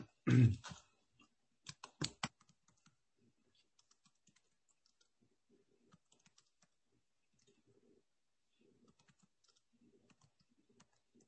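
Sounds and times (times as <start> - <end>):
typing a sentence on a computer keyboard: 1.6 - 3.0, 3.6 - 5.2, 5.8 - 6.8, 8.8 - 11.2.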